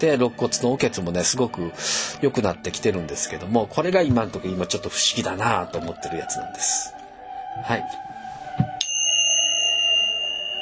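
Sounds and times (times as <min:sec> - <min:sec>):
speech: 0:00.0 - 0:07.0, 0:07.6 - 0:08.8
soft low thud: 0:04.0 - 0:04.4
bell ringing: 0:08.8 - 0:10.6.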